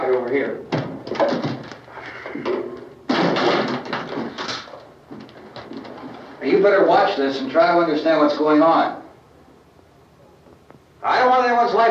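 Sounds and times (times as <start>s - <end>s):
chairs bumping and knocking as they are pushed together: 0.0s - 6.4s
speech: 0.3s - 1.5s, 6.5s - 9.0s, 11.0s - 11.8s.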